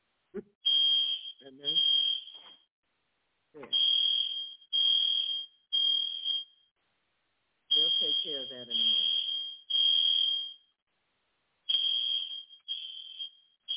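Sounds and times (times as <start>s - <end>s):
fire alarm electronic beeps: 0.6s - 2.7s, 3.6s - 6.7s, 7.7s - 10.8s, 11.7s - 13.7s.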